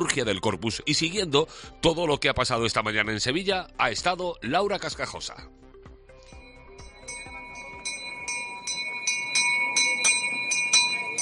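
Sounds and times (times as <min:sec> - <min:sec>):
speech: 0:00.0 - 0:05.6
hand-rung bell rung by children in Seville to start the Corpus Christi procession: 0:06.3 - 0:11.1.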